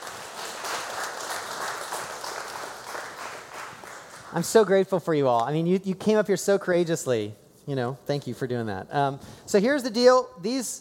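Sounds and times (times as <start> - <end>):
audience applause: 0.0 - 4.4
speech: 4.3 - 10.7.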